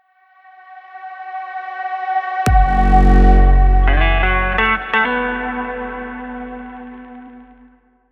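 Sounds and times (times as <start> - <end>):
stylish beauty lifestyle downtempo music: 2.5 - 7.7.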